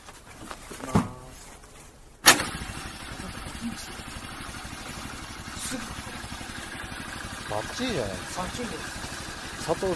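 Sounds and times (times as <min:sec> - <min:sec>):
motorcycle engine cranking: 0:02.2 - 0:09.9
speech: 0:07.6 - 0:09.0, 0:09.6 - 0:09.9.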